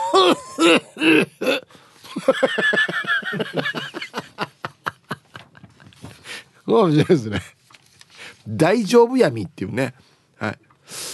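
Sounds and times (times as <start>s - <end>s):
laughter: 0.0s - 1.2s, 2.1s - 7.5s
person acting out a coughing fit: 0.0s - 1.7s
speech: 0.6s - 1.4s, 6.8s - 7.6s, 8.6s - 10.6s.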